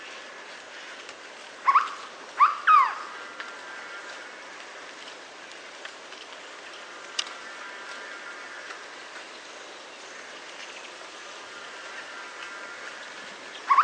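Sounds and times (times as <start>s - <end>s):
background hiss: 0.0s - 13.8s
hooded berryeater Carpornis cucullata call: 1.6s - 3.1s, 13.7s - 13.8s.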